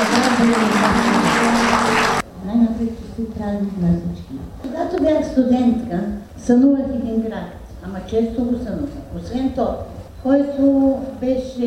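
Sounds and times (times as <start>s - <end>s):
audience applause at a public event: 0.0s - 2.2s
speech: 3.4s - 11.6s.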